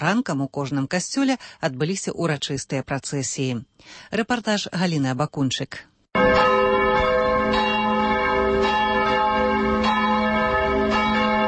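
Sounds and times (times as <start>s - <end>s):
speech: 0.0s - 6.5s
church bells pealing for Easter: 6.2s - 11.4s.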